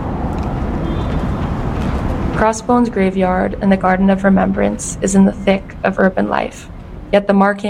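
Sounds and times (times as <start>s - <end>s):
dense rumble of city street traffic: 0.0s - 7.6s
speech: 2.4s - 7.6s.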